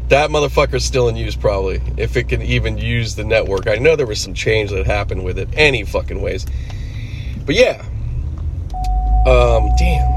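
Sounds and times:
low car engine hum: 0.0s - 10.1s
speech: 0.1s - 6.7s, 7.5s - 7.9s, 9.2s - 10.1s
car low-fuel warning chime: 8.7s - 10.1s.

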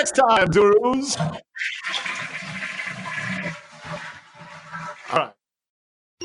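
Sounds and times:
speech: 0.0s - 2.1s, 5.1s - 5.4s
toilet flushing: 1.1s - 5.4s.

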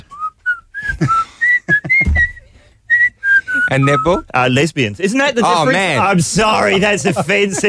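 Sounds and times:
person whistling short bright notes: 0.0s - 4.2s
laughter: 1.0s - 2.2s, 6.1s - 7.6s
speech: 3.7s - 7.6s.

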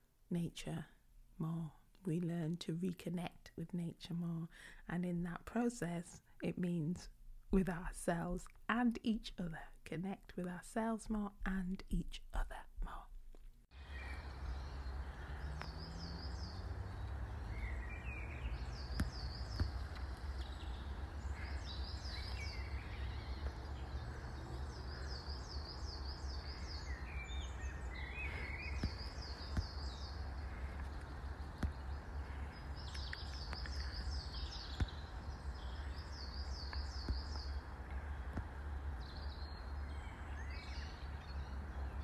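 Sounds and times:
steady low outdoor hum in a wooded setting: 0.0s - 42.0s
speech: 0.3s - 13.1s
small birds singing trilling phrases in pine woodland: 13.7s - 42.0s.

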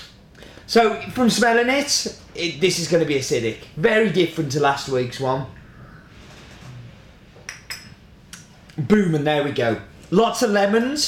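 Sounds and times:
speech: 0.7s - 5.6s, 8.8s - 11.0s
spoon stirring espresso in a cup: 7.5s - 8.0s.

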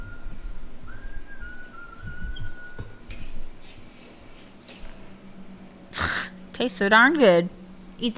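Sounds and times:
person whistling: 0.0s - 3.0s
speech: 6.6s - 8.1s.

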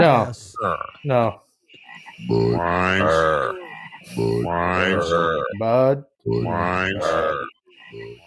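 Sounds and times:
speech: 0.0s - 1.4s, 2.2s - 8.2s
voiced cartoon frogs croaking from a beer commercial: 0.0s - 8.2s.

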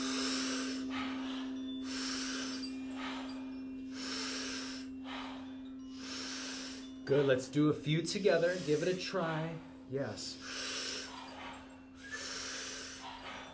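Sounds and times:
big powerful inhale and soft exhale in a breathing exercise: 0.0s - 7.0s, 10.4s - 13.5s
speech: 7.1s - 10.6s.

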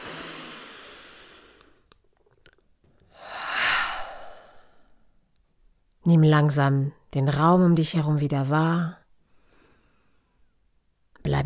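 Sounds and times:
deep breath in during a guided relaxation breathing exercise: 0.0s - 1.9s, 3.1s - 5.1s, 9.2s - 10.5s
speech: 6.1s - 9.0s.

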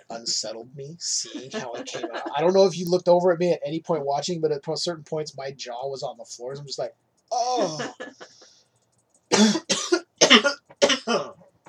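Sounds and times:
speech: 0.1s - 8.5s
laughter: 1.1s - 2.7s, 7.4s - 8.4s
harsh coughs: 1.3s - 2.2s, 7.5s - 8.0s, 9.3s - 11.3s.

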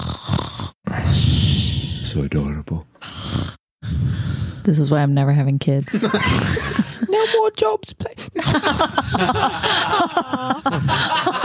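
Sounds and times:
voice imitating a small creature's cute snore: 0.0s - 2.2s, 3.0s - 4.6s
speech: 2.1s - 11.4s
laughter: 5.9s - 7.4s, 8.4s - 11.4s.

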